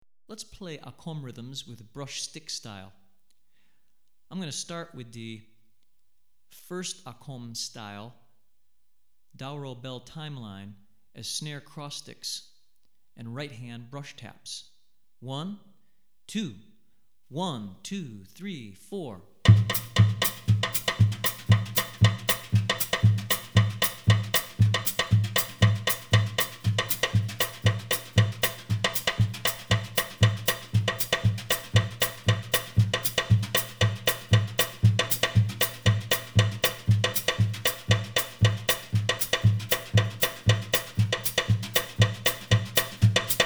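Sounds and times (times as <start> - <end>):
drum kit played with brushes in West African rhythms: 19.5 - 43.4.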